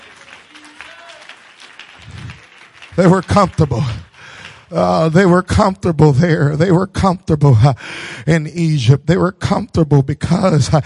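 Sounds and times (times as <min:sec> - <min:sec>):
audience clapping hands: 0:00.0 - 0:06.4
speech: 0:03.0 - 0:04.1, 0:04.7 - 0:10.8.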